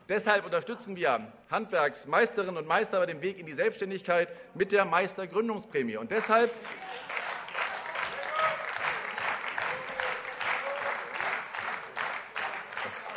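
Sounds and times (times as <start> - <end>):
speech: 0.1 - 7.1
applause in a parliament chamber: 6.1 - 13.1.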